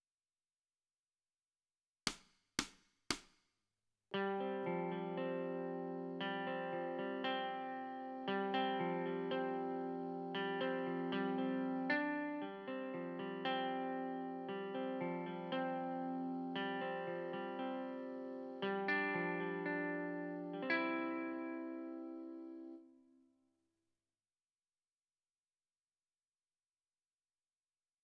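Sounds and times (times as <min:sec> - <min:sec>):
guitar: 0:04.1 - 0:23.2.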